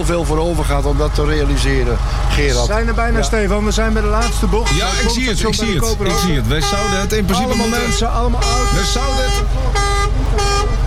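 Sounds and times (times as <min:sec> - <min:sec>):
speech: 0:00.0 - 0:10.5
vehicle horn blaring: 0:04.1 - 0:10.8.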